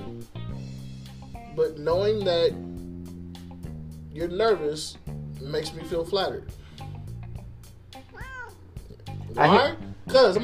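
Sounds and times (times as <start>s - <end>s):
speech: 1.6s - 2.7s, 4.2s - 6.6s, 9.3s - 10.4s
cat meowing: 8.0s - 9.0s.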